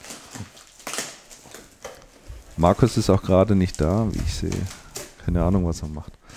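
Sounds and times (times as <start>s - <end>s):
plastic gummy bear packaging rustling and crinkling: 0.0s - 6.3s
speech: 2.6s - 6.2s.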